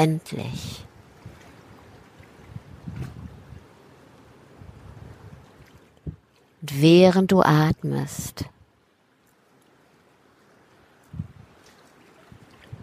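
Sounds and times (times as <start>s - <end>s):
speech: 0.0s - 0.9s, 6.6s - 8.6s
wind: 0.0s - 12.8s.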